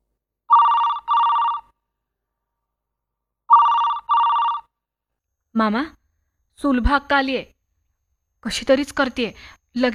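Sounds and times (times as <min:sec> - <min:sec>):
telephone ringing with an electronic trilling tone: 0:00.5 - 0:01.8, 0:03.5 - 0:04.8
speech: 0:05.6 - 0:06.0, 0:06.6 - 0:07.5, 0:08.4 - 0:09.9.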